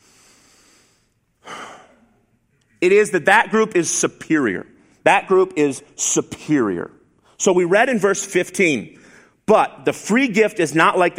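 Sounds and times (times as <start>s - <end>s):
deep breath: 0.0s - 2.2s, 8.9s - 9.4s
speech: 2.8s - 11.1s.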